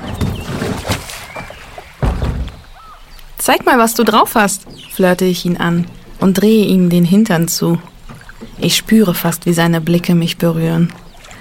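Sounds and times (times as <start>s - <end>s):
heavy thump of person boarding a rowboat: 0.0s - 2.8s
small wooden rowboat knocking and creaking as it rocks: 0.0s - 11.3s
soft water sloshing against a rowboat: 0.0s - 11.3s
speech: 3.5s - 11.0s.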